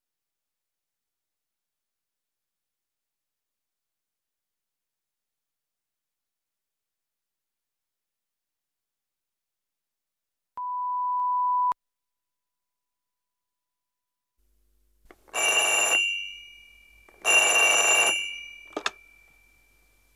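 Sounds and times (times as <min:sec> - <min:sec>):
steady electronic beep: 0:10.6 - 0:11.8
old-style telephone bell ringing in jangling bursts: 0:15.3 - 0:20.0.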